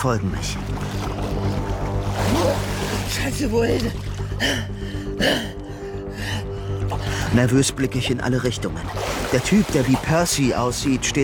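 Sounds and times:
speech: 0:00.0 - 0:01.6, 0:02.3 - 0:05.6, 0:07.0 - 0:11.2
front crawl swimming splashes in the sea: 0:00.4 - 0:04.5, 0:08.8 - 0:10.5.

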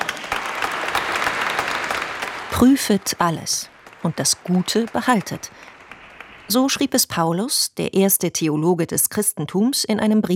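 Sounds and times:
congregation applauding during a church service: 0:00.0 - 0:07.2
speech: 0:02.6 - 0:05.7, 0:06.5 - 0:10.3.

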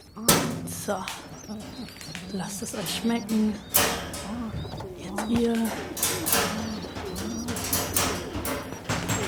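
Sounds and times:
several pigeons cooing: 0:00.0 - 0:09.2
speech: 0:00.2 - 0:06.7
soft rustling: 0:01.1 - 0:09.2.

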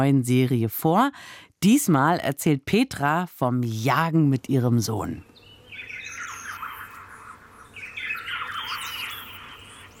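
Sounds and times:
speech: 0:00.0 - 0:05.3
steady low hum: 0:00.0 - 0:09.9
several birds calling and chirping outdoors: 0:05.3 - 0:09.9.

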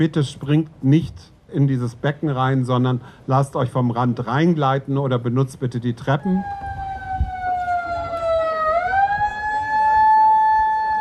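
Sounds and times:
speech: 0:00.0 - 0:06.8
siren wailing at a public swimming pool: 0:06.2 - 0:11.0.

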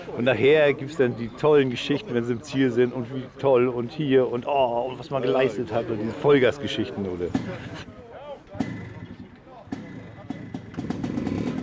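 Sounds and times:
speech: 0:00.1 - 0:07.9
Enduro Classic competition motorcycle engine idling: 0:08.6 - 0:11.6.

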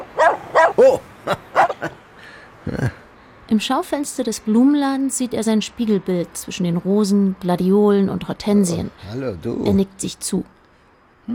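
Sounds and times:
dog barking in short sharp yaps: 0:00.0 - 0:01.9
speech: 0:03.5 - 0:10.6.

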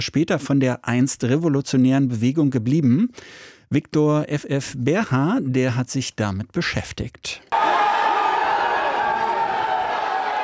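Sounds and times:
speech: 0:00.0 - 0:07.6
crowd cheering and shouting outside a courthouse: 0:07.5 - 0:10.4.

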